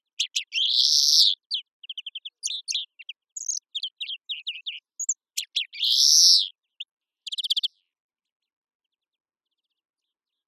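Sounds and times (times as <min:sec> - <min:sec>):
European greenfinch Chloris chloris calls, buzzy wheeze and chirps: 0:00.2 - 0:06.5, 0:07.2 - 0:07.7.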